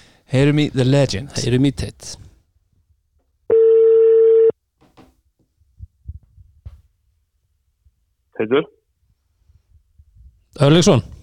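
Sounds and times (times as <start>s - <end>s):
speech: 0.3s - 2.2s, 8.4s - 8.8s, 10.6s - 11.2s
telephone ringback tone while calling a guest: 3.5s - 4.5s.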